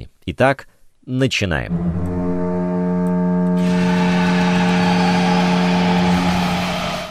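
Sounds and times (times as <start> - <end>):
speech: 0.3 - 2.1
hockey arena goal horn blaring: 1.7 - 7.1
crowd roar: 3.6 - 7.1.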